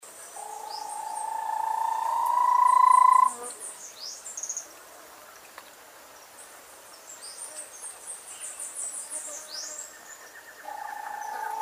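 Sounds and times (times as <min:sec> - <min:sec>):
Bahia tapaculo rising trill: 0:00.4 - 0:03.3, 0:10.6 - 0:11.6.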